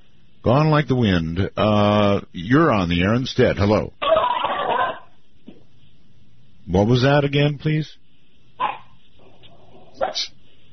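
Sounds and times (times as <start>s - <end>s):
speech: 0.4s - 4.1s, 6.7s - 8.0s, 10.0s - 10.4s
dog barking over a caller's phone line: 4.0s - 5.1s, 8.6s - 10.3s.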